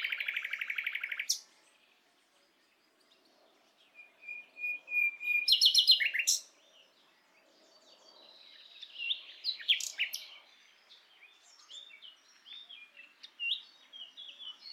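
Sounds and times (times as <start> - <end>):
common nightingale Luscinia megarhynchos song: 0.0 - 14.7.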